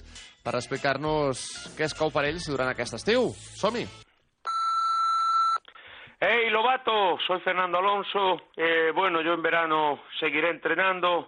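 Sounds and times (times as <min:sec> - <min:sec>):
speech: 0:00.4 - 0:04.0, 0:06.6 - 0:11.2
answering machine beep: 0:04.5 - 0:05.6.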